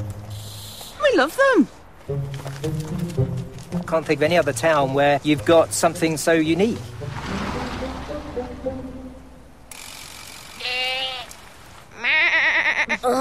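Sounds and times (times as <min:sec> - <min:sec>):
faint hiss: 0:00.3 - 0:01.9
speech: 0:01.1 - 0:03.3, 0:03.9 - 0:07.2
goats bleating in Llandudno, Wales: 0:10.6 - 0:13.1.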